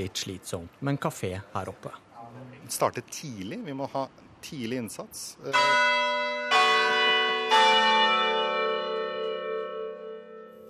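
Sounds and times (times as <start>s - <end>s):
speech: 0.0s - 2.1s, 2.7s - 6.0s
large city hall tower bell ringing: 5.5s - 10.6s.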